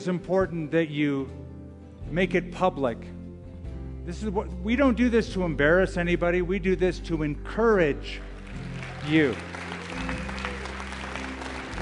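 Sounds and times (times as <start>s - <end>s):
speech: 0.0s - 1.4s, 2.0s - 3.2s, 4.0s - 10.1s
audience applauding: 8.2s - 11.8s.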